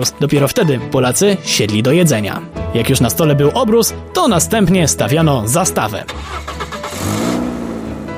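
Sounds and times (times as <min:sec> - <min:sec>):
speech: 0:00.0 - 0:07.3
car engine starting and revving: 0:06.0 - 0:08.1.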